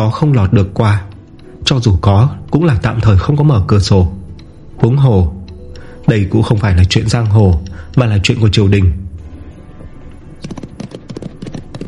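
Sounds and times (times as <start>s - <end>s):
speech: 0.0s - 4.2s, 4.8s - 5.4s, 6.1s - 9.0s
single horse galloping through city streets: 10.4s - 11.8s.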